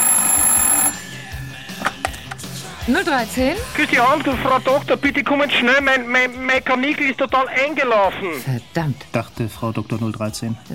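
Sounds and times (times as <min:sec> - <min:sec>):
telephone ringing in a buzzing burst: 0:00.0 - 0:01.8
speech: 0:02.9 - 0:10.7.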